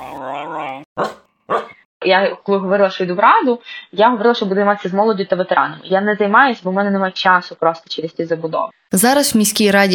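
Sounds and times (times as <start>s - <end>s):
dog letting out a long wavering whine: 0.0s - 1.8s
dog giving short sharp barks: 1.0s - 1.8s
speech: 2.0s - 9.9s.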